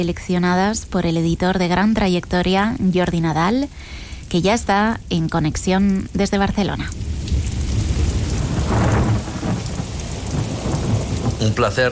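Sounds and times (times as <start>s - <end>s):
speech: 0.0s - 7.1s, 11.4s - 11.8s
heavy rain: 0.0s - 11.8s
deep thunder rumbling: 4.4s - 11.8s.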